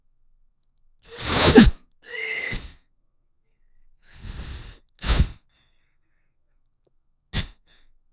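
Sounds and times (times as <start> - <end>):
person sneezing: 1.1 - 2.8, 7.4 - 7.7.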